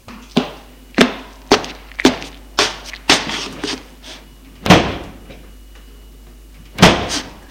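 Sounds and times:
man's footsteps walking to a car in freezing weather: 0:00.1 - 0:04.2.

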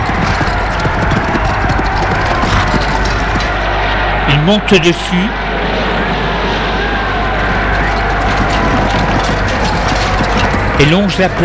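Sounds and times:
hooves of two white horses clip-clopping on a beach: 0:00.0 - 0:03.8, 0:07.6 - 0:11.4
chariot wheels rumbling along a beach: 0:00.0 - 0:04.4, 0:05.6 - 0:11.4
speech: 0:04.4 - 0:05.4, 0:10.8 - 0:11.4.

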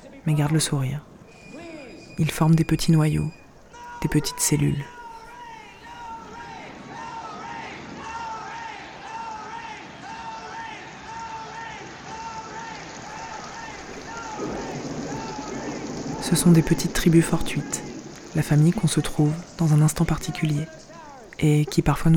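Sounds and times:
steady hiss of rain: 0:00.0 - 0:07.0, 0:11.9 - 0:22.1
speech: 0:00.2 - 0:01.1, 0:02.2 - 0:03.4, 0:04.0 - 0:05.0, 0:16.3 - 0:20.8, 0:21.4 - 0:22.1
large festival crowd chanting and shouting no to the rain: 0:03.2 - 0:22.1.

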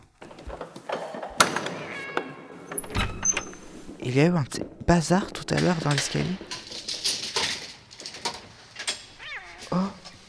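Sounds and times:
cat meowing while passing between someone's legs: 0:00.0 - 0:04.0, 0:09.1 - 0:10.2
indoor clatter: 0:00.0 - 0:10.2
shuffling household noises: 0:00.0 - 0:10.2
speech: 0:04.0 - 0:06.6.

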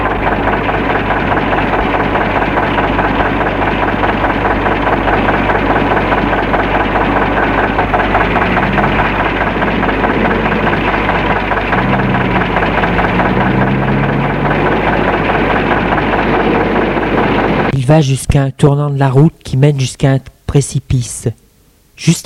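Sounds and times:
truck engine idling with a rhythmic knocking chug: 0:00.0 - 0:17.7
speech: 0:17.9 - 0:21.4, 0:22.0 - 0:22.2.

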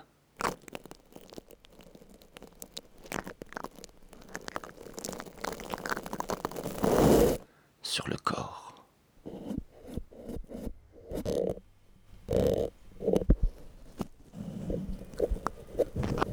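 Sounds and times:
microphone rubbed against a beard: 0:04.3 - 0:07.4, 0:09.2 - 0:11.6, 0:12.2 - 0:16.3.

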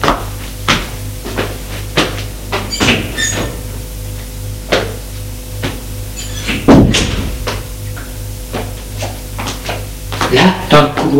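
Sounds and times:
low steady hum: 0:00.0 - 0:11.1
bedroom door creaking open: 0:02.7 - 0:03.6, 0:06.2 - 0:07.4
bedroom door thudding shut: 0:06.5 - 0:07.6
speech: 0:10.3 - 0:11.1.

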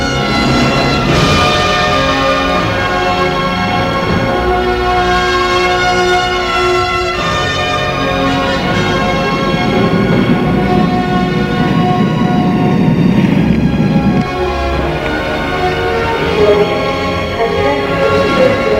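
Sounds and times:
train rumbling at a railway station: 0:00.0 - 0:18.7
sustained ringing tones: 0:08.2 - 0:15.1.

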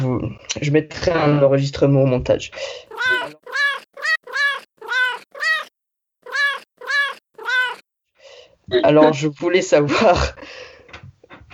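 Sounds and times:
speech: 0:00.1 - 0:03.6, 0:08.7 - 0:10.7
pet cat meowing: 0:02.9 - 0:07.8.

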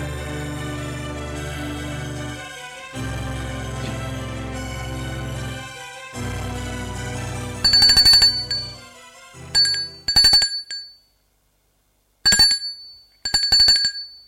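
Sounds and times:
low humming musical background: 0:00.0 - 0:10.3
doorbell ringing in short bright rattling bursts: 0:07.6 - 0:11.1, 0:12.3 - 0:14.2.

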